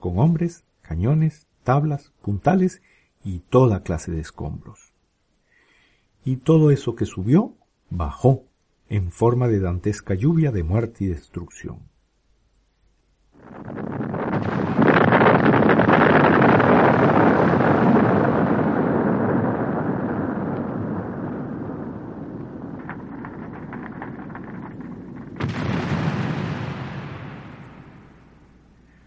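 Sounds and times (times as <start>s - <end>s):
speech: 0.0s - 4.9s, 6.2s - 11.9s
explosion from a battle re-enactment recreating the blowing up of Fort Elliot: 13.4s - 29.0s.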